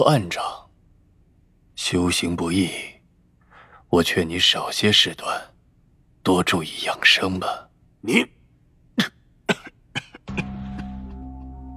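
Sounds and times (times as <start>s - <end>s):
speech: 0.0s - 0.6s, 1.8s - 2.9s, 3.9s - 5.5s, 6.2s - 8.4s, 9.0s - 9.2s
frail sickly man coughing harshly: 9.0s - 11.0s.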